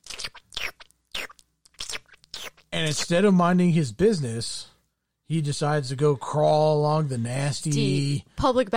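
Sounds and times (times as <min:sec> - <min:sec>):
mouth imitating wet slurping noises: 0:00.0 - 0:02.8
speech: 0:02.8 - 0:04.7, 0:05.3 - 0:08.7.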